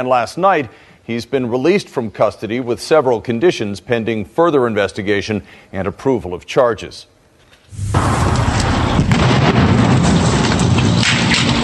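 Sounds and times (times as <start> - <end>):
speech: 0.0 - 7.1, 7.7 - 8.5
heavy boom of a boat exploding under a bridge: 7.7 - 11.6
sustained loud roaring rumble: 7.8 - 11.6.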